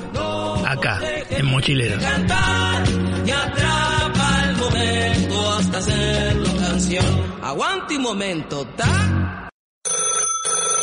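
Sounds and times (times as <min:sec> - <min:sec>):
speech: 0:00.7 - 0:03.8, 0:04.7 - 0:09.2
old-fashioned landline telephone bell ringing: 0:09.8 - 0:10.8.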